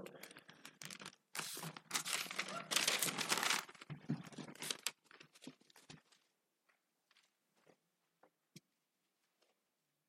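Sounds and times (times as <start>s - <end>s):
thin paper Bible pages rustling and crinkling: 0.2s - 6.3s.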